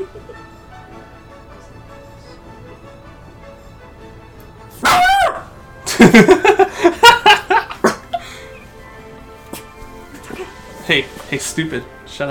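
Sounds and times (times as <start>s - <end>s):
dog barking loudly with yelping barks: 4.8s - 5.5s
laughter: 5.9s - 8.4s
speech: 6.1s - 6.4s, 10.9s - 12.2s.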